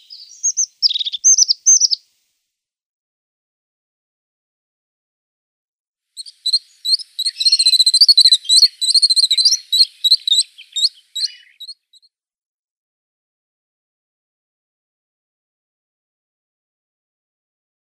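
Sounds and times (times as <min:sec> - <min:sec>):
crested tit song with sharp high notes: 0:00.0 - 0:02.0, 0:06.2 - 0:12.1.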